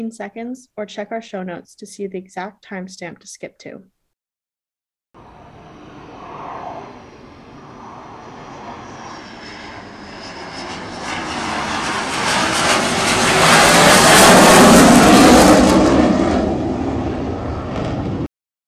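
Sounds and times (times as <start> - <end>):
speech: 0.0 - 4.0
Growler military jet flying overhead: 5.2 - 18.3.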